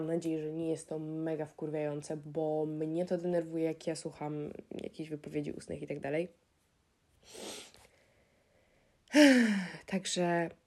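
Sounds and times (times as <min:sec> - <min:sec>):
speech: 0:00.0 - 0:06.5, 0:09.1 - 0:10.6
breathy inhale: 0:07.2 - 0:09.7.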